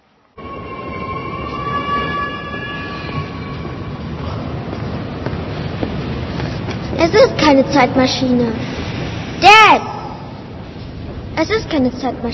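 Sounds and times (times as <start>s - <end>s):
subway train rumbling: 0.0s - 12.3s
subway train wheels squealing: 0.4s - 4.6s
speech: 7.0s - 8.7s, 11.4s - 12.3s.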